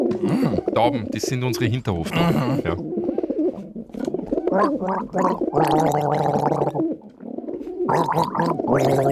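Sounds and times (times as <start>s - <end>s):
person gargling water: 0.1s - 0.8s, 2.1s - 2.9s, 4.5s - 6.9s, 7.9s - 9.1s
speech: 0.2s - 3.1s, 4.5s - 6.9s, 7.9s - 9.1s.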